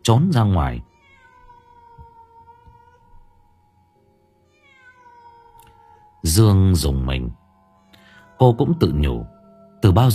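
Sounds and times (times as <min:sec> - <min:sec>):
speech: 0:00.0 - 0:00.9, 0:06.2 - 0:07.4, 0:08.4 - 0:10.1
cat crying out in drawn-out wavering calls: 0:00.8 - 0:03.4, 0:04.5 - 0:06.3, 0:08.0 - 0:09.3.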